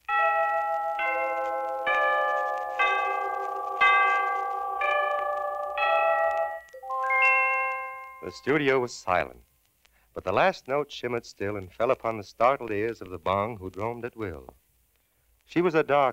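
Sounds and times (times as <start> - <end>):
radio station time-signal gong chimes: 0.1 - 8.9
speech: 8.2 - 9.5, 10.2 - 14.6, 15.5 - 16.1.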